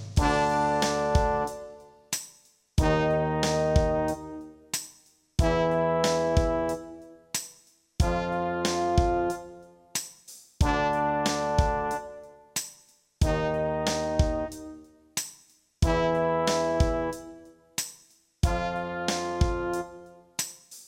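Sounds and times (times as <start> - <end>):
brass playing in E flat: 0.2 - 2.0, 2.8 - 4.7, 5.4 - 7.3, 8.0 - 9.9, 10.6 - 12.5, 13.3 - 15.0, 15.9 - 17.6, 18.5 - 20.4.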